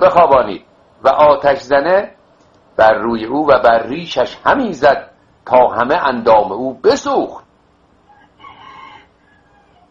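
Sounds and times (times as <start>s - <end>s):
speech: 0.0s - 2.2s, 2.8s - 7.4s
low hiss: 0.0s - 9.9s
rooster crowing: 8.0s - 9.9s.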